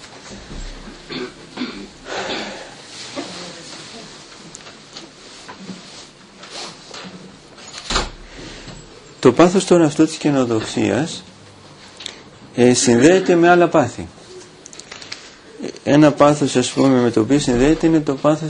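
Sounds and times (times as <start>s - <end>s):
chair being shifted across the floor: 0.0s - 9.0s
speech: 0.3s - 1.6s, 9.2s - 11.3s, 12.6s - 14.2s, 15.9s - 18.4s.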